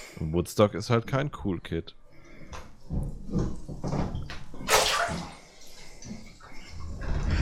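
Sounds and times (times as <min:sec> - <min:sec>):
speech: 0:00.2 - 0:05.3
water sloshing and splashing: 0:04.5 - 0:06.8.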